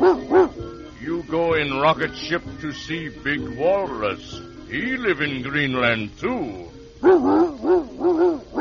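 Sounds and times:
dog barking: 0.0s - 0.6s, 7.0s - 8.5s
speech: 1.3s - 8.2s.

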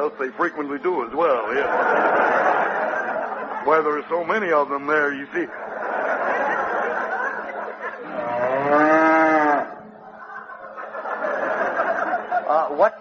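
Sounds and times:
speech: 0.0s - 5.7s, 12.7s - 12.9s
laughter: 0.0s - 12.9s
cow mooing: 8.1s - 9.8s.

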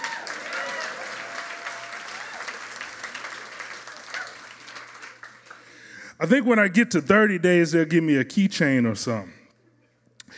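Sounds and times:
audience applauding: 0.0s - 5.9s
speech: 6.2s - 9.4s.

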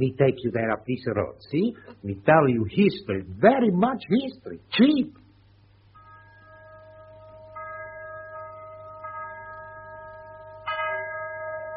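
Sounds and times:
speech: 0.0s - 5.2s
chapel bell ringing for a wedding: 5.9s - 11.7s.

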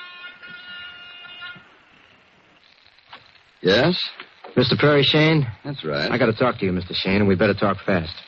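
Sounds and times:
apartment door buzzer: 0.0s - 2.2s
speech: 3.6s - 8.2s.

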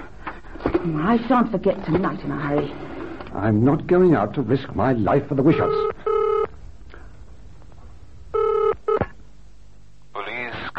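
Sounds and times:
speech: 0.8s - 6.0s
telephone dialing electronic tone bursts: 5.7s - 6.5s, 8.4s - 9.1s.

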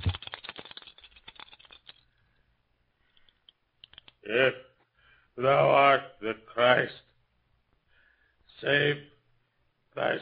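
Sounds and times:
dice rattling in a cup: 0.0s - 2.1s, 3.8s - 4.2s
speech: 4.3s - 4.6s, 5.4s - 7.0s, 8.6s - 9.1s, 10.0s - 10.1s.

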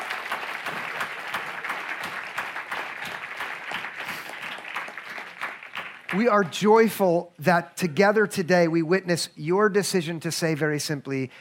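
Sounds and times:
audience clapping: 0.0s - 6.6s
speech: 6.1s - 11.3s.

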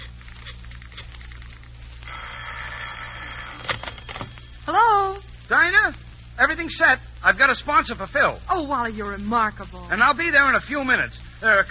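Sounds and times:
low steady hum: 0.0s - 11.6s
telephone bell ringing with a metallic jangle: 2.0s - 4.6s
speech: 4.7s - 11.6s.

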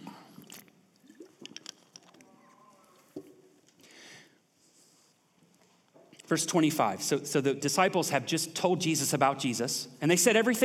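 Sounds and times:
person sipping water: 0.0s - 3.9s
speech: 6.3s - 10.6s.

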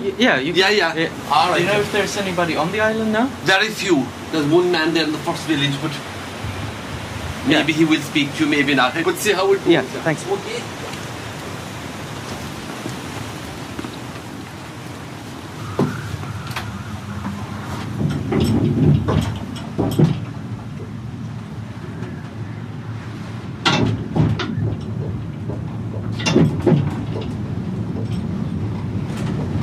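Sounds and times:
cable car rumbling over the ocean: 0.0s - 29.6s
speech: 0.1s - 6.1s, 7.4s - 10.8s, 18.8s - 20.2s
wind noise: 5.0s - 29.6s
metallic clanks and creaks of a rocking cable car cabin: 15.6s - 22.4s, 23.4s - 29.6s.

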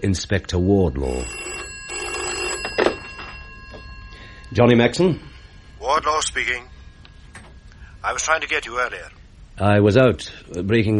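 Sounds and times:
speech: 0.0s - 1.6s, 4.5s - 6.8s, 8.0s - 10.9s
telephone bell ringing in a flat: 0.6s - 8.8s.

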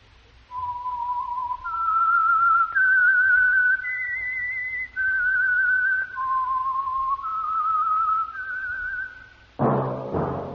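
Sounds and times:
slow whistled theme melody: 0.5s - 9.4s.

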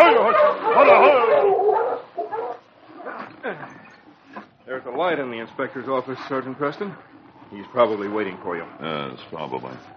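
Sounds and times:
pack of sled dogs barking and yipping on snow: 0.0s - 4.2s
speech: 5.0s - 9.9s.

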